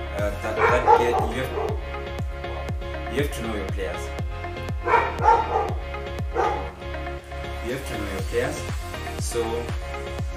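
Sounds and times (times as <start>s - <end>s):
speech: 0.2s - 2.1s, 3.1s - 5.0s, 7.7s - 10.2s
dogs barking: 0.4s - 2.1s, 4.7s - 6.8s.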